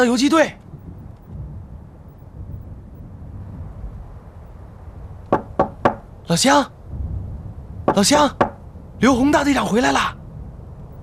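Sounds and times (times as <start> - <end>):
speech: 0.0 - 0.6, 6.3 - 6.8, 7.9 - 10.2
low rumbling noise: 0.0 - 11.0
knocking on a villager's door: 5.3 - 6.0, 7.9 - 8.6.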